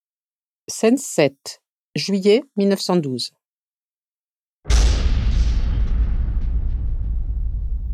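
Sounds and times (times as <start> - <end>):
speech: 0.7 - 3.4
explosion with deep rumbling roar: 4.7 - 7.9.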